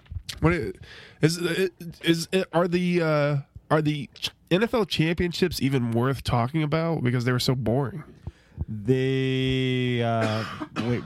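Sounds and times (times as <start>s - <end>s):
speech: 0.4s - 11.0s
person coughing: 10.1s - 11.0s
throat clearing: 10.1s - 11.0s.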